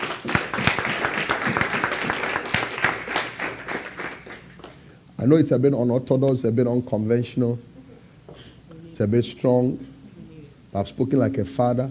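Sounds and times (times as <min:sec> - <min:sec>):
crowd clapping hands: 0:00.0 - 0:04.8
speech: 0:05.2 - 0:07.7, 0:09.0 - 0:09.9, 0:10.7 - 0:11.8.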